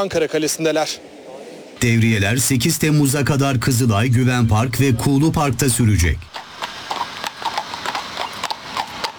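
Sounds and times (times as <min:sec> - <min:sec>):
speech: 0:00.0 - 0:01.2, 0:01.8 - 0:06.4
mounted police horses' hooves clip-clopping on a hard surface: 0:06.2 - 0:09.1.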